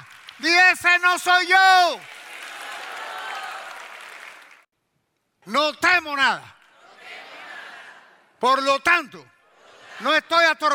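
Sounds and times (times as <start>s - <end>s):
audience applauding: 0.0s - 0.8s, 1.9s - 4.7s
speech: 0.4s - 2.1s, 5.5s - 6.6s, 8.4s - 9.3s, 10.0s - 10.7s.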